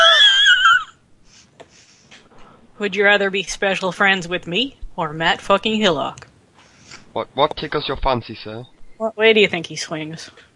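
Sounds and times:
strained wheezing breath with a high whistling tone: 0:01.2 - 0:02.2, 0:06.6 - 0:07.1
speech: 0:02.8 - 0:06.2, 0:07.1 - 0:10.5.

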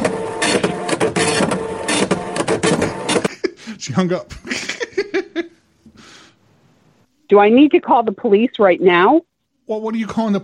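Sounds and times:
printer mechanism clattering and whirring: 0:00.0 - 0:03.3
laughter: 0:02.8 - 0:05.6
speech: 0:03.9 - 0:04.4, 0:07.3 - 0:10.4.

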